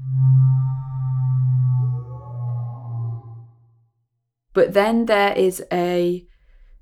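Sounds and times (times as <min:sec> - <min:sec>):
loud deep foghorn blast: 0:00.0 - 0:03.8
rough wavering tone: 0:00.0 - 0:04.1
speech: 0:04.6 - 0:06.3.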